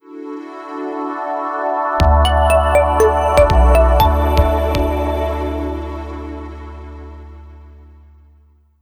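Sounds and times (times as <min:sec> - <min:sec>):
clean logo jingle: 0:02.2 - 0:06.8.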